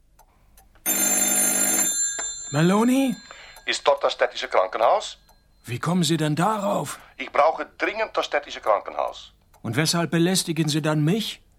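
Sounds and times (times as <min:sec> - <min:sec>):
telephone bell ringing with a metallic jangle: 0:00.8 - 0:05.6
speech: 0:02.5 - 0:11.4.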